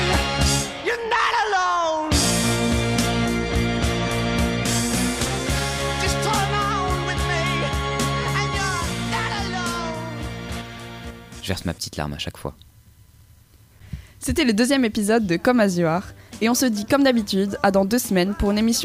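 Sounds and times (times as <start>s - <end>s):
loud dense rock music with brass and a backing choir: 0.0s - 11.4s
singer screaming: 0.8s - 2.2s, 6.0s - 10.2s
speech: 11.5s - 12.7s, 14.2s - 18.8s.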